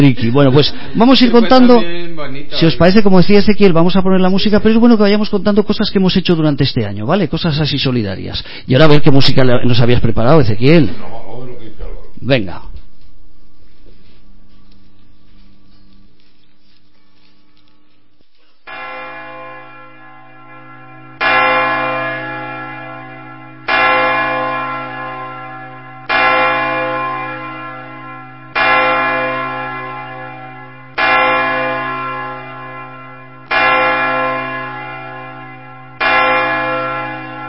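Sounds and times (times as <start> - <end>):
speech: 0.0 - 11.4, 12.2 - 12.7
church bells chiming for New Year: 18.7 - 37.4.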